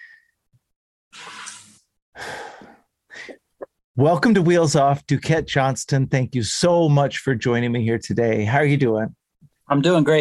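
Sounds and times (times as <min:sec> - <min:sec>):
person taking a deep breath: 0:02.2 - 0:03.4
speech: 0:04.0 - 0:10.2.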